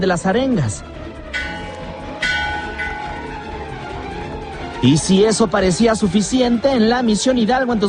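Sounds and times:
speech: 0.0s - 1.5s, 4.8s - 7.8s
large church bell tolling: 1.3s - 4.0s.

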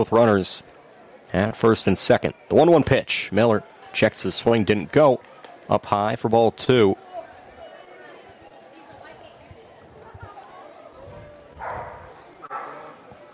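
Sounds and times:
speech: 0.0s - 0.7s, 1.3s - 7.0s
crowd chatter at a ballpark: 0.0s - 13.3s
dogs barking at a ballpark: 11.6s - 13.3s.

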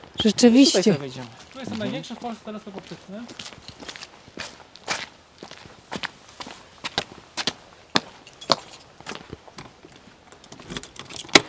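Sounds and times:
speech: 0.2s - 3.7s
soft footsteps: 1.2s - 10.3s
bunch of tour keys jangling at a telescope observatory: 1.4s - 1.8s, 3.5s - 4.2s, 7.9s - 8.9s, 10.4s - 11.4s.

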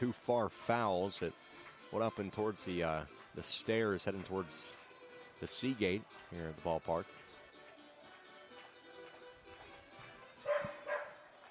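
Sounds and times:
speech: 0.0s - 4.8s, 5.4s - 7.2s
Huskies barking: 10.4s - 11.3s.

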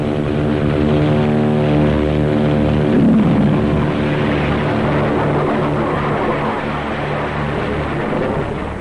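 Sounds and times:
propeller engines of a rocket-assisted airplane roaring during takeoff: 0.0s - 8.8s
rushing blast of JATO rocket bottles: 2.7s - 5.4s.

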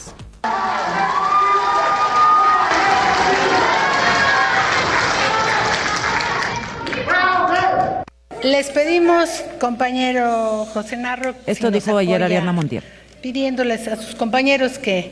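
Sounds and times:
crowd shouting protest chants of fraud: 0.4s - 8.1s
speech: 8.4s - 15.1s.

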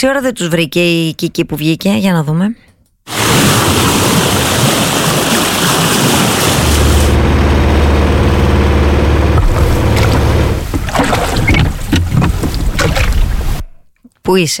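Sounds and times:
speech: 0.0s - 2.6s, 14.3s - 14.5s
waves splashing against a boat hull: 3.1s - 13.8s
boat engine drone on open water: 5.8s - 13.1s.

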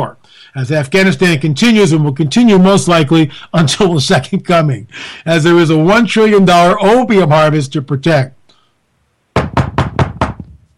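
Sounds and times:
speech: 0.0s - 8.4s
quick loud knocks on a door: 9.4s - 10.6s.

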